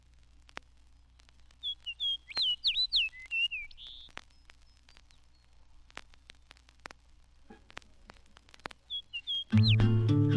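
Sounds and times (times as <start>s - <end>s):
faint clicks: 0.0s - 9.9s
fox sparrow singing: 1.6s - 5.5s, 8.9s - 10.2s.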